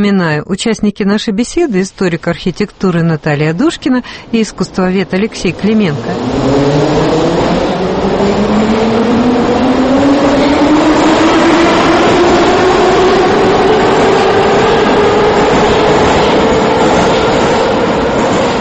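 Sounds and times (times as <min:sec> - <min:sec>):
speech: 0:00.0 - 0:09.9
Moscow metro train wheels rumbling on track: 0:02.7 - 0:18.6
Moscow metro train electric motor whine while accelerating: 0:03.3 - 0:18.6.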